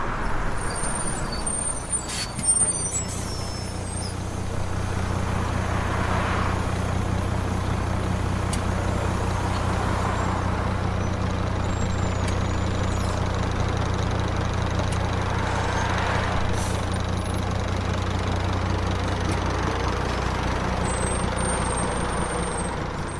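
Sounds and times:
bus or van engine idling: 0.1 - 23.1.

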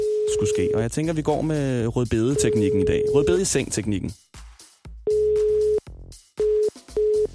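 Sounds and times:
telephone ringback tone beeps: 0.0 - 0.8, 2.4 - 3.5, 5.1 - 5.8, 6.4 - 7.3
speech: 0.4 - 4.3.

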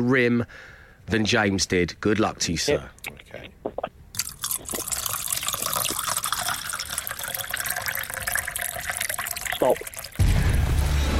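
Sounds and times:
speech: 0.0 - 3.6, 9.6 - 9.9
liquid pouring into a container: 4.2 - 10.2.

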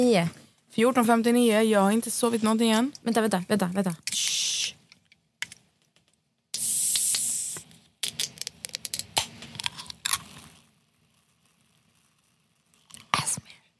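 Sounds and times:
speech: 0.0 - 4.3
can opening with fizzing hiss: 6.5 - 10.6.

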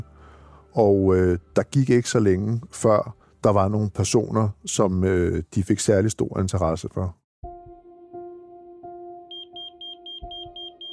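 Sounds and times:
speech: 0.7 - 7.2
pager beeping with short high electronic tones: 9.3 - 10.9.

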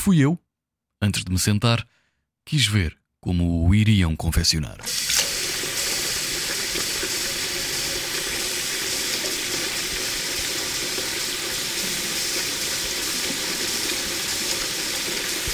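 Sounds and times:
speech: 0.0 - 0.4, 1.0 - 5.2
forceful water jet spraying into a sink washing pans: 4.9 - 15.5.

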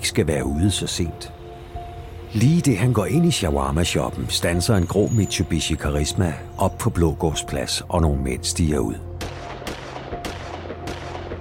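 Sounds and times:
speech: 0.0 - 1.4, 2.3 - 9.1
automatic weapon gunshots on a city square in the evening: 9.2 - 11.4.

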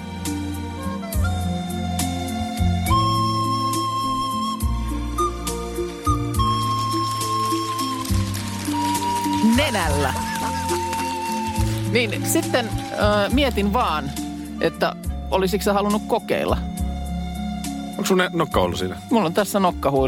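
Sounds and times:
continuous low instrumental accompaniment: 0.0 - 20.0
person whistling a slow song melody: 1.2 - 8.0
speech: 9.8 - 10.3, 11.9 - 16.7, 18.0 - 20.0.

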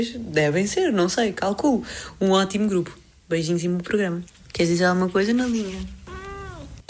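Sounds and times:
speech: 0.0 - 6.0
female cat meowing: 6.0 - 6.8.

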